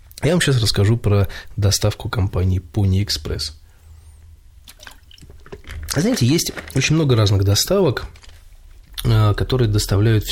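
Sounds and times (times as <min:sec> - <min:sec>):
speech: 0:00.2 - 0:03.6, 0:06.0 - 0:08.2, 0:09.0 - 0:10.3
plastic water bottle cap twisting off with crinkling crackles and clicks: 0:04.7 - 0:06.9.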